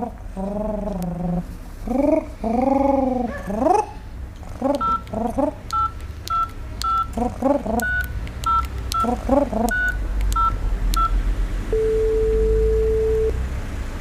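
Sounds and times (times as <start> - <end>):
low hum: 0.0 - 13.4
telephone keypad tones: 4.8 - 5.1, 5.7 - 7.2, 7.8 - 13.4
telephone ringback tone: 11.7 - 13.3.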